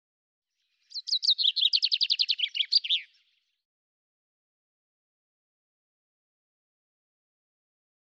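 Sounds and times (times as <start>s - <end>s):
common chaffinch song: 0.6s - 3.6s.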